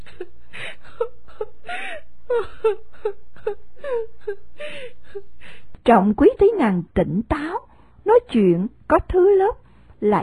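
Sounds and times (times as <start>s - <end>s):
woman sobbing with whimpers and wails: 0.0s - 5.7s
speech: 5.9s - 10.2s.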